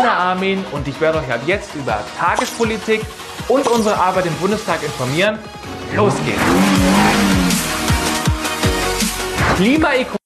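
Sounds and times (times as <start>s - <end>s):
speech: 0.1s - 7.4s, 9.5s - 10.2s
motorcycle engine revving: 5.6s - 8.2s.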